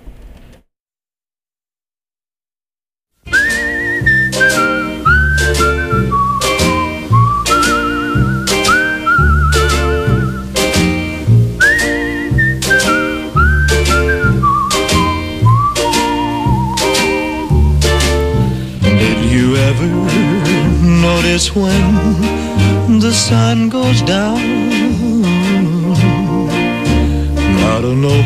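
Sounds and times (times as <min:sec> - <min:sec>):
bright whistled melody: 0:03.3 - 0:23.5
rhythmic backing track with punchy bass beats: 0:03.3 - 0:28.2
speech: 0:23.2 - 0:24.7.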